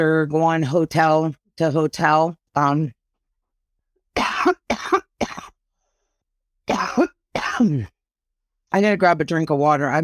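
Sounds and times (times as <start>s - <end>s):
speech: 0.0s - 3.0s, 7.0s - 8.0s, 8.7s - 10.0s
hoarse person's coughing fit: 4.2s - 5.6s, 6.7s - 7.9s.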